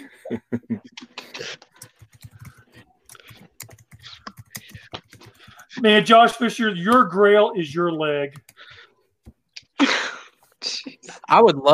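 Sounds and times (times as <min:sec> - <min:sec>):
speech: 0:00.3 - 0:00.8, 0:05.8 - 0:08.4, 0:11.3 - 0:11.7
man typing rapidly on a computer keyboard in a chat: 0:01.5 - 0:06.3, 0:08.3 - 0:08.9.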